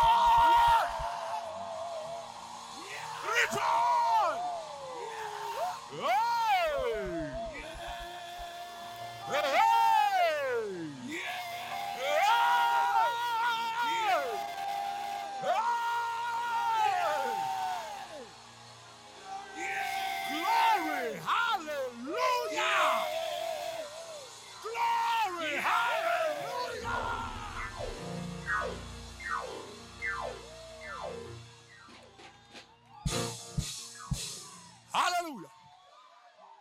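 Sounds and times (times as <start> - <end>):
audience shouting and cheering: 0.0 - 36.5
sharp percussive bursts: 27.4 - 35.0.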